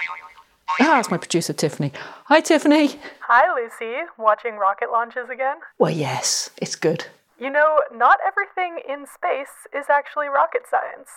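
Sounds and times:
mobile phone ringtone: 0.0 - 0.9
speech: 0.1 - 11.1.

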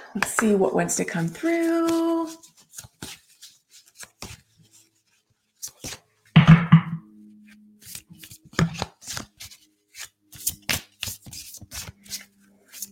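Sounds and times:
speech: 0.1 - 2.9
deck of chakra cards being shuffled and drawn: 1.3 - 6.1, 7.5 - 12.9.

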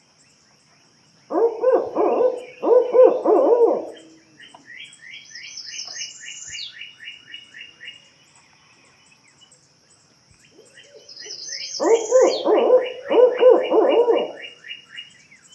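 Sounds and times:
insects trilling: 0.0 - 15.5
small birds chirping: 0.0 - 15.5
barred owl hooting: 1.3 - 4.3, 10.7 - 14.8.

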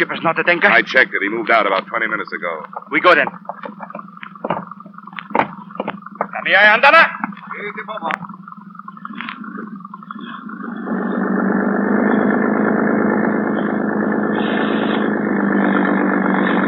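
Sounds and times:
speech: 0.0 - 4.0, 6.4 - 8.4
harbor police motorboat engine running on a dark night: 0.0 - 16.6.

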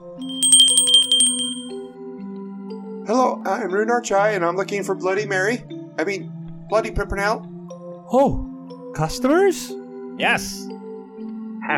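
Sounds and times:
small desk bell at a bookstore desk dinging: 0.1 - 1.8
speech: 3.1 - 7.5, 8.1 - 10.7.

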